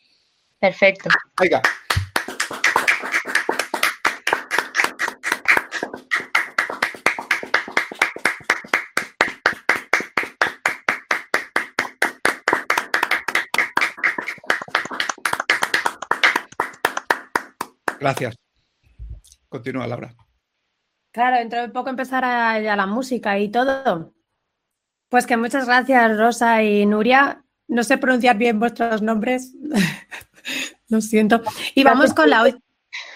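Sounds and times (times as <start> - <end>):
speech: 0.6 - 1.8, 18.0 - 18.4, 19.5 - 20.2, 21.2 - 24.2, 25.1 - 30.0, 30.9 - 32.6
small group clapping: 1.0 - 18.4, 31.5 - 32.4
laughter: 31.5 - 32.5.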